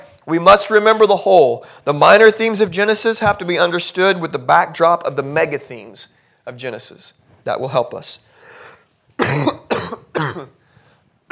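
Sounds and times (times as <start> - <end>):
speech: 0.2 - 8.3, 9.2 - 10.6
loud coughs: 9.2 - 10.6.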